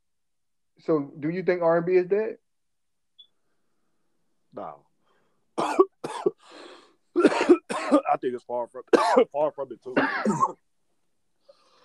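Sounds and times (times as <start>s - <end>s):
speech: 0.8s - 2.4s, 4.5s - 4.8s, 8.2s - 10.7s
person coughing: 5.6s - 6.5s, 7.2s - 8.2s, 8.9s - 10.6s.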